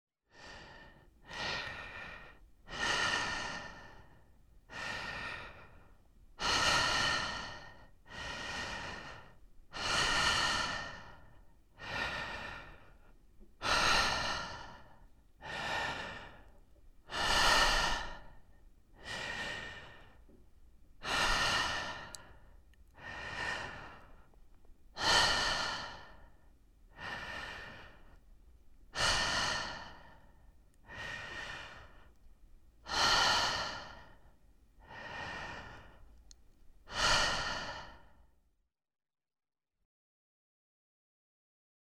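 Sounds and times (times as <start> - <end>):
person breathing while falling asleep: 0.3 - 20.4, 21.0 - 32.2, 32.8 - 38.4.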